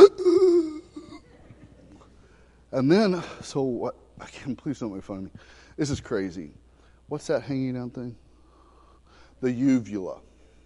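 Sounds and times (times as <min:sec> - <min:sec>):
man imitating a gasping wake-up from sleep apnea: 0:00.0 - 0:01.2
speech: 0:02.7 - 0:08.2, 0:09.4 - 0:10.3.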